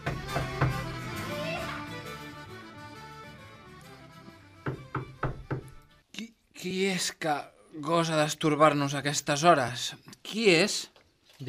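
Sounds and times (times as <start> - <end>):
knocking on the wooden door of a large house at night: 0.0 - 0.9, 4.6 - 5.8
speech: 6.6 - 11.4.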